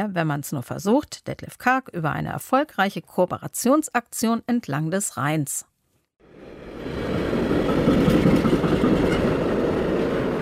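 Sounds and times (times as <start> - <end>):
speech: 0.0 - 5.7
long freight train rolling over a railway bridge in Cologne: 6.3 - 10.4
faint rail clatter: 7.4 - 10.4.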